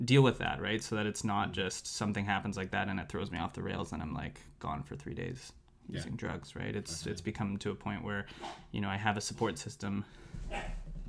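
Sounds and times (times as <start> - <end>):
low room noise: 0.0 - 11.0
speech: 0.0 - 11.0
dog barking: 10.5 - 10.8.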